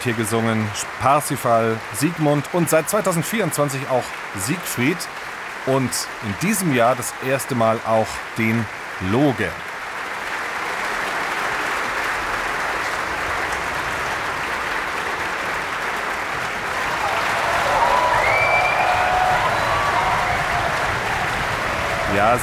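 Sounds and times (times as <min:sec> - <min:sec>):
speech: 0:00.0 - 0:09.7, 0:22.2 - 0:22.4
large indoor opera audience applause: 0:00.0 - 0:22.4
faint cheers or whistles from opera audience: 0:16.7 - 0:22.4.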